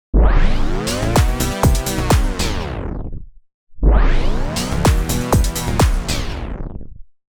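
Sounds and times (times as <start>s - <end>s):
EDM tape stop effect: 0.7s - 2.6s, 4.4s - 6.4s.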